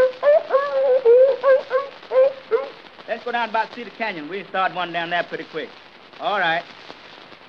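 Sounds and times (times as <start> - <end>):
hunting dogs barking in high ringing yelps: 0.1 - 2.9
speech: 3.4 - 6.8.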